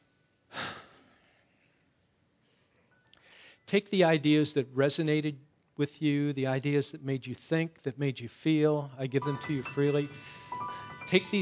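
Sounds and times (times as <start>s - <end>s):
deep breath: 0.0s - 3.7s, 10.2s - 11.0s
speech: 3.7s - 11.3s.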